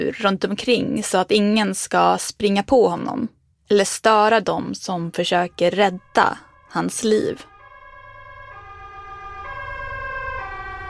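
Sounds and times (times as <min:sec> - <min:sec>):
speech: 0:00.0 - 0:07.5
ambulance siren wailing: 0:05.4 - 0:10.8.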